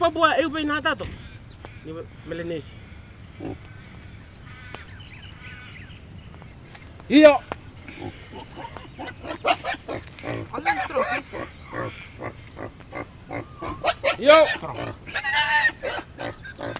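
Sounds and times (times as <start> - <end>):
speech: 0.0 - 2.8, 3.4 - 3.7, 7.1 - 12.3, 14.2 - 15.0
pig being stunned squealing: 2.2 - 3.8, 7.8 - 16.7
pig being stunned grunting: 3.3 - 3.7, 7.8 - 16.7.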